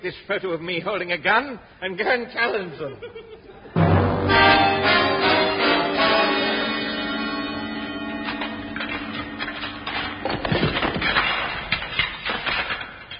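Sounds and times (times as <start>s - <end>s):
speech: 0.0s - 3.4s
laughter: 2.5s - 3.8s
sustained musical chord: 3.8s - 10.4s
shovel strokes breaking through a wooden floor: 8.8s - 13.1s.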